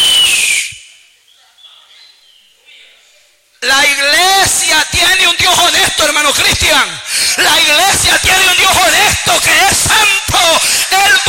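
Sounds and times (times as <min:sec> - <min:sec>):
shrill descending whistle-like cry: 0:00.0 - 0:01.0
speech: 0:04.5 - 0:11.2.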